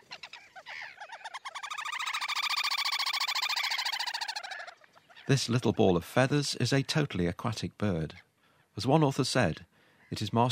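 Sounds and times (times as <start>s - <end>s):
little grebe trilling: 0.0s - 5.8s
speech: 5.3s - 10.5s.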